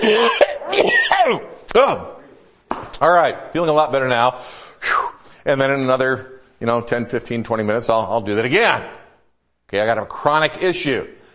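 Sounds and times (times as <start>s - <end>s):
throat clearing: 0.0s - 1.5s
harsh raspy coughing: 0.0s - 1.6s
speech: 0.0s - 2.2s, 3.0s - 9.0s, 9.7s - 11.2s.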